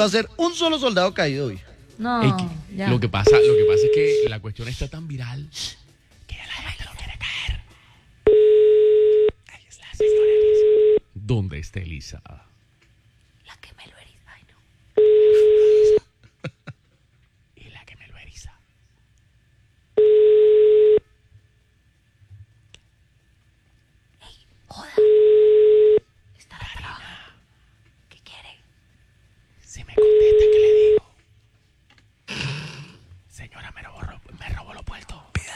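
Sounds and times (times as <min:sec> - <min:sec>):
speech: 0:00.0 - 0:05.8, 0:11.2 - 0:12.4
phone call ringing tone beeps reaching a voicemail system: 0:02.3 - 0:04.4, 0:08.3 - 0:09.4, 0:10.0 - 0:11.1, 0:15.0 - 0:16.1, 0:20.0 - 0:21.1, 0:25.0 - 0:26.0, 0:30.0 - 0:31.1.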